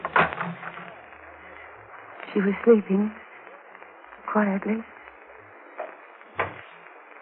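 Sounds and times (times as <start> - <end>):
wooden connecting door in an old house creaking open: 0.0 - 1.0
steady hiss: 0.0 - 7.1
speech: 2.3 - 3.2, 4.4 - 4.9.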